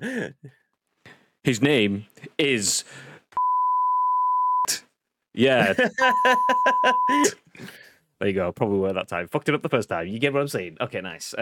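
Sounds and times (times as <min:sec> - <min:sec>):
speech: 0:00.0 - 0:03.1, 0:05.4 - 0:11.4
loud steady censor bleep over a spoken name: 0:03.4 - 0:04.7, 0:06.1 - 0:07.2
laughter: 0:05.6 - 0:07.4.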